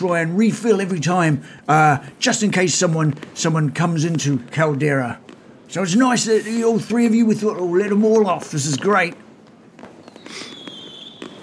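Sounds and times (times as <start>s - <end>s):
speech: 0.0s - 9.2s
fireworks crackling and popping: 0.0s - 11.4s
long thin firework whistle: 6.1s - 7.2s, 9.8s - 11.4s.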